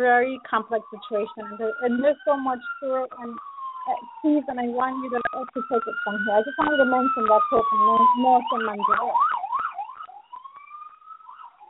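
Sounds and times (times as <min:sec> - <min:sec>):
faint traffic noise: 0:00.0 - 0:09.3
speech: 0:00.0 - 0:09.4
emergency vehicle siren wailing in a street: 0:00.0 - 0:11.6.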